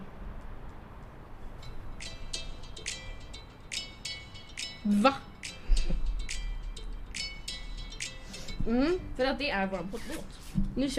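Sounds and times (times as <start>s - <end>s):
phone ringtone playing the podcast's theme song: 1.6s - 9.2s
speech: 4.8s - 5.3s, 8.7s - 10.9s.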